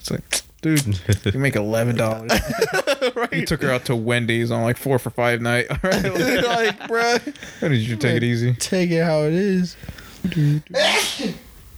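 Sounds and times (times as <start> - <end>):
speech: 0.1 - 11.3
laughter: 0.8 - 4.2, 5.4 - 8.8
loud sneeze: 10.8 - 11.6.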